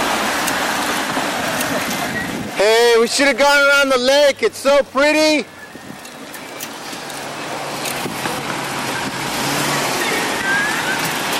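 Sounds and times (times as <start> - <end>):
rushing wind noise: 0.0 - 3.1, 5.5 - 11.3
car approaching from behind: 0.0 - 11.3
speech: 2.6 - 5.6.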